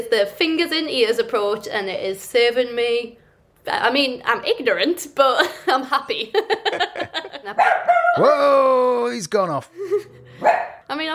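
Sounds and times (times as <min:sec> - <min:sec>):
speech: 0:00.0 - 0:11.1
laughter: 0:05.5 - 0:07.6, 0:09.7 - 0:10.4
dog barking yappy barks at passing birds: 0:07.5 - 0:08.2, 0:10.3 - 0:10.9.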